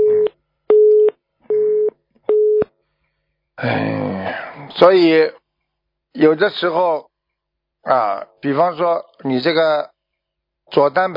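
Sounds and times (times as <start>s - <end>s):
telephone busy signal after call dropped: 0.0s - 2.6s
speech: 3.6s - 5.4s, 6.2s - 7.1s, 7.8s - 9.9s, 10.7s - 11.1s.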